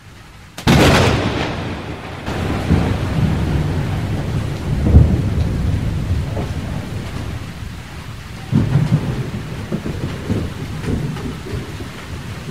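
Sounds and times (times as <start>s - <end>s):
falling rain: 0.0s - 12.4s
thunder crack and low rumbles: 0.6s - 12.4s.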